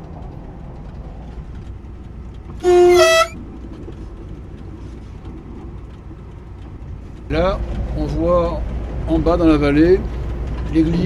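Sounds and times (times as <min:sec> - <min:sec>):
low rumbling background: 0:00.1 - 0:11.0
tourist train horn blast before entering a tunnel: 0:02.6 - 0:03.4
speech: 0:07.3 - 0:11.0.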